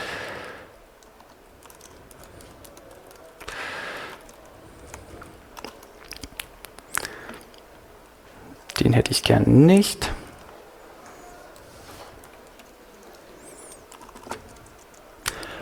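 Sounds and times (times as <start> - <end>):
typing on a computer keyboard at a speaker's lectern: 1.0 - 7.7, 11.5 - 15.5
speech: 8.9 - 10.2.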